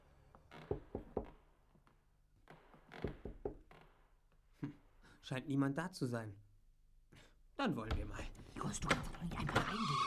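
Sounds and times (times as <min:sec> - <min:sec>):
soft hesitant knocks on a wooden door: 0:00.7 - 0:01.4, 0:03.0 - 0:03.7
speech: 0:05.2 - 0:06.5, 0:07.6 - 0:10.0.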